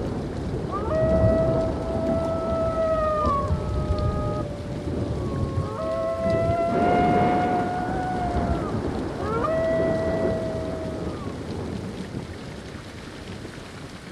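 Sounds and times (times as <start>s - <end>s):
heavy rain pouring: 0.0s - 14.1s
low continuous rumble of thunder: 0.0s - 14.1s
wolves howling in long wavering tones: 0.6s - 11.4s.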